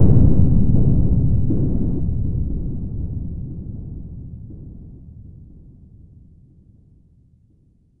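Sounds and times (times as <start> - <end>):
filtered explosion synth effect in C2: 0.0 - 4.5.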